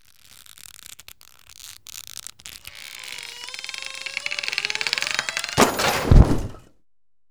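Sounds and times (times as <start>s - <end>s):
ropes straining and crashing: 2.7s - 6.6s.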